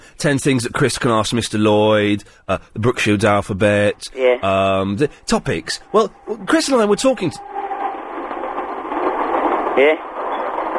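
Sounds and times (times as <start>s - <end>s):
speech: 0.2s - 7.6s, 9.8s - 10.1s
train passing on the track beside a house: 3.6s - 10.7s.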